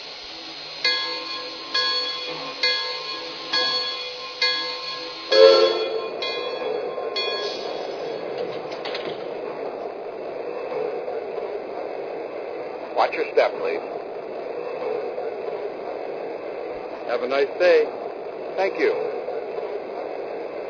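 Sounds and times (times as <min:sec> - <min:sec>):
passenger train rumble and hiss departing a station: 0:00.0 - 0:20.6
passenger train bell clanging at a station: 0:00.8 - 0:08.7
speech: 0:17.2 - 0:18.0, 0:18.6 - 0:19.0.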